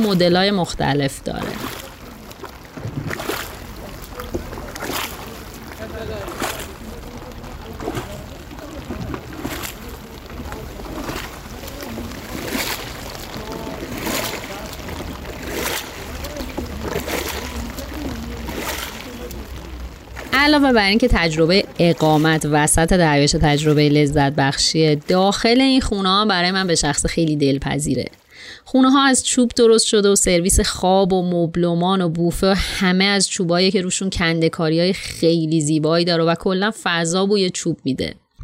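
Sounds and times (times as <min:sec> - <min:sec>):
speech: 0:00.0 - 0:01.8, 0:20.5 - 0:38.2
shikara rowboat paddle strokes splashing in lake water: 0:00.0 - 0:26.8
steady lake water wash: 0:00.0 - 0:30.8
low murmur of voices: 0:01.5 - 0:20.6.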